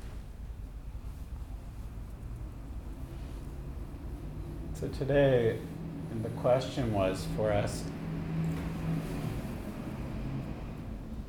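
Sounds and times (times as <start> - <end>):
truck passing with low engine rumble: 2.8 - 11.2
speech: 4.8 - 8.0.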